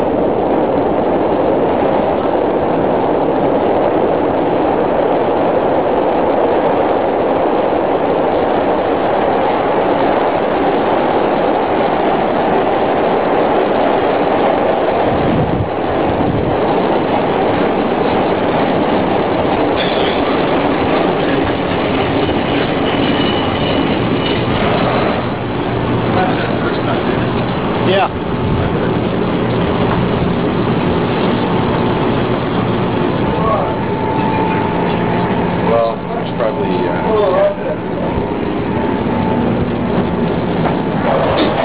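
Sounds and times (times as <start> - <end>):
moving train rumbling along the tracks with rattling wheels: 0.0 - 41.6.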